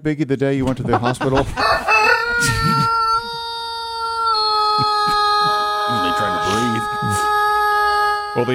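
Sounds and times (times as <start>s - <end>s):
speech: 0.0s - 2.6s
laughter: 0.7s - 3.5s, 4.6s - 8.5s
bird clucks: 0.9s - 3.3s
rooster crowing: 1.5s - 8.5s.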